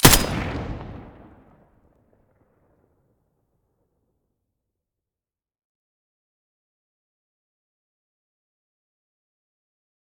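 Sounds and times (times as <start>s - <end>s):
M4A1 rifle muzzle blast in stereo: 0.0s - 1.5s.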